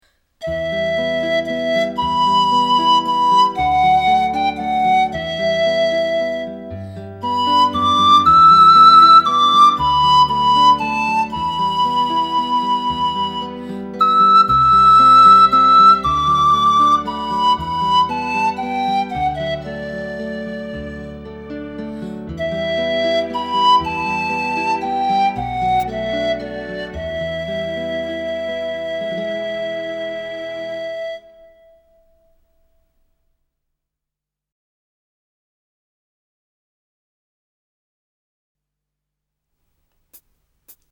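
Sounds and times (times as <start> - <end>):
pan flute: 0.4 - 21.6, 22.2 - 32.4.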